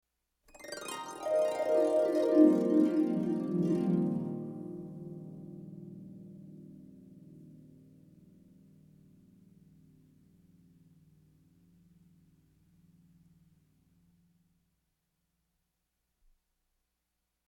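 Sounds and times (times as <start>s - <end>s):
descending harp glissandi: 0.6s - 5.5s.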